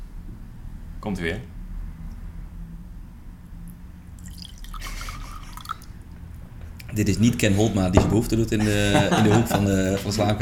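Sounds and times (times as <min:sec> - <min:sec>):
low steady hum: 0:00.0 - 0:10.4
speech: 0:01.0 - 0:01.6, 0:06.9 - 0:10.4
wine glugging and splashing poured from a bottle: 0:04.2 - 0:07.0
laughter: 0:07.4 - 0:10.4.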